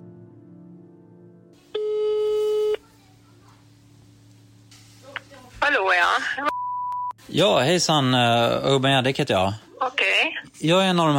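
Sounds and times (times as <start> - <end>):
low hum: 1.6 - 11.1
telephone ringback tone before call is answered: 1.8 - 2.8
speech: 5.8 - 6.5, 7.4 - 9.6, 10.6 - 11.1.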